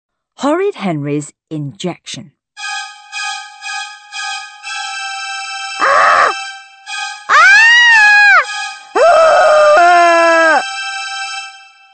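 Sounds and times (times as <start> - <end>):
speech: 0.4 - 2.4
wailing screams from behind a closed door: 5.8 - 6.4, 7.3 - 10.6.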